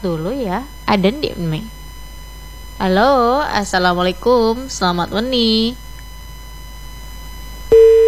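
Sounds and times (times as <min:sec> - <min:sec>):
speech: 0:00.0 - 0:01.8, 0:02.8 - 0:05.8
quiet buzzing telephone line hum: 0:00.0 - 0:08.0
telephone busy tone after an incoming call is cut off: 0:07.7 - 0:08.0.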